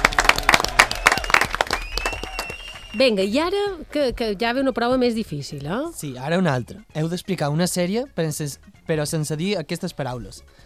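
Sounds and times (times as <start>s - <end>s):
small group clapping at a quiz game: 0.0s - 3.0s
speech: 3.0s - 10.6s.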